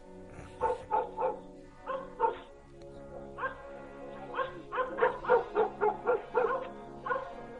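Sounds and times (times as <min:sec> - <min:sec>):
chained dog barking at night on a house porch: 0:00.4 - 0:02.5, 0:03.4 - 0:03.7, 0:04.3 - 0:07.5.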